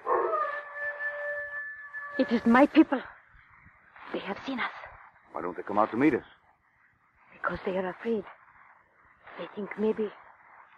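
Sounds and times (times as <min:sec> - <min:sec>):
wolf howling in the rain: 0:00.0 - 0:02.5
speech: 0:02.2 - 0:03.1, 0:04.2 - 0:04.8, 0:05.4 - 0:06.4, 0:07.5 - 0:08.4, 0:09.4 - 0:10.2.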